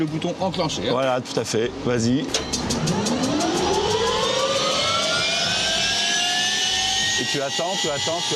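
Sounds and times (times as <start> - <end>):
speech: 0.0 - 3.3, 7.2 - 8.3
jet engine spooling up toward 62% N1: 2.4 - 8.3.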